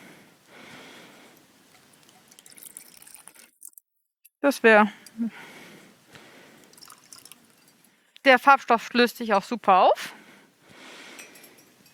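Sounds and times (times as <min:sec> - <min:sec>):
cold water poured into a plastic cup: 0:01.7 - 0:03.8, 0:06.6 - 0:07.6
speech: 0:04.4 - 0:05.5, 0:08.2 - 0:10.2.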